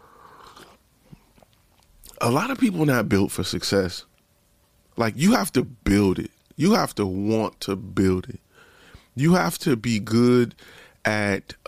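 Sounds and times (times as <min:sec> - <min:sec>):
soft swallow: 0:00.0 - 0:01.4
slurp of a hot drink being sipped: 0:00.0 - 0:01.5
speech: 0:02.2 - 0:04.1, 0:05.0 - 0:08.4, 0:09.2 - 0:11.6.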